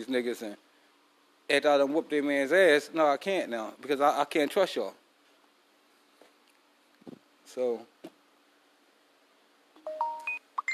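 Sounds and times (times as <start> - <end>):
speech: 0.0 - 0.7, 1.5 - 5.0, 7.5 - 7.9
short electronic phone notification beeps at varying pitches: 9.8 - 10.7.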